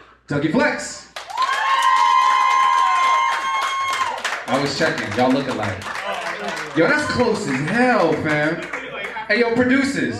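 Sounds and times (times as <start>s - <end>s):
speech: 0.3s - 1.1s, 4.5s - 10.1s
live audience clapping: 1.1s - 9.6s
live audience cheering: 1.2s - 9.8s.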